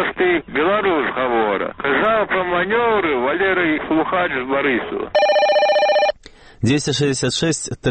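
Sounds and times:
speech: 0.0s - 5.6s, 6.6s - 7.8s
telephone answering line ringing in Minsk: 5.2s - 6.2s.

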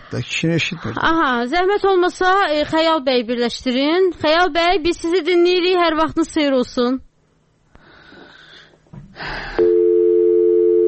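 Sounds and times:
speech: 0.1s - 7.1s
telephone line tone on a call that fails to connect: 9.6s - 10.8s.

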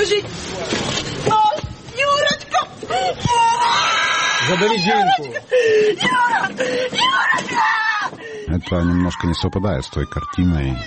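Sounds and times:
speech: 0.0s - 1.4s, 2.6s - 3.9s, 4.5s - 7.9s, 8.5s - 10.8s
grieving mothers, girlfriends and relatives wailing and crying out in anguish: 2.9s - 10.8s.

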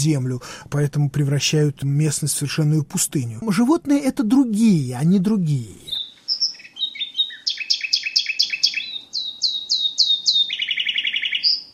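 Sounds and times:
speech: 0.0s - 6.0s
nightingale singing with rapid trills: 5.0s - 11.7s.

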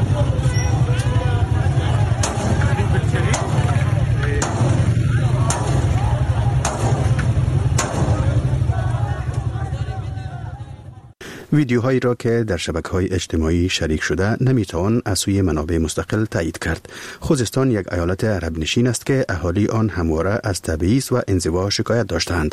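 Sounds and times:
low rumble: 0.0s - 11.2s
crowd noise at a street protest: 0.0s - 11.3s
gunshots fired by security forces at a street protest: 2.1s - 8.8s
speech: 11.6s - 22.5s.

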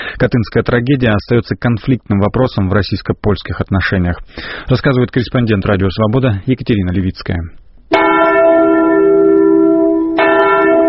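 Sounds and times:
speech: 0.2s - 8.1s
large church bell tolling slowly: 7.9s - 10.8s.

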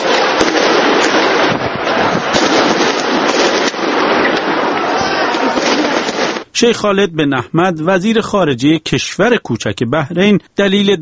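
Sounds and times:
constant dense roar of noise at a street protest: 0.0s - 6.0s
gunfire and tear gas shots at a street protest: 0.0s - 6.5s
speech: 6.6s - 10.9s.

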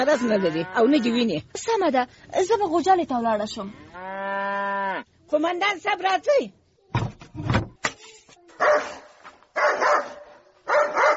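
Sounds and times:
speech: 0.0s - 6.6s
dog barking and yelping: 8.6s - 11.1s.

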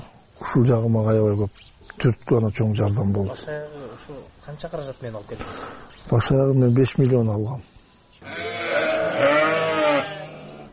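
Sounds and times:
speech: 0.5s - 8.4s, 9.2s - 9.6s
Edilbay breed sheep bleating in a farmyard: 8.2s - 10.7s.

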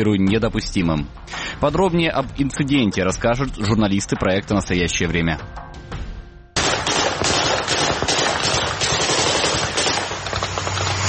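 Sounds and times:
speech: 0.0s - 5.6s
automatic gunfire bursts from military exercises: 6.6s - 11.0s.

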